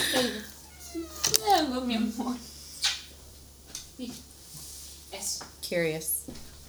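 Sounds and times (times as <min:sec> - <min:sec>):
cat meowing: 0:00.2 - 0:01.7
speech: 0:05.7 - 0:06.2.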